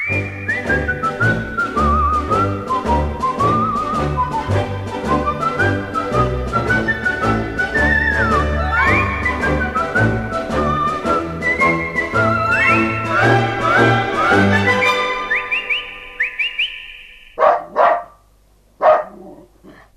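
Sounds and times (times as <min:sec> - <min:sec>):
bright whistled melody: 0:00.0 - 0:17.4
dog barking: 0:17.4 - 0:18.2, 0:18.8 - 0:19.8.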